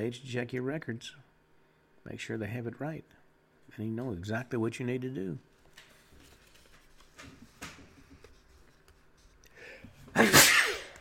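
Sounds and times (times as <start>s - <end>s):
speech: 0.0s - 1.3s, 2.0s - 5.5s
person sneezing: 10.0s - 10.9s.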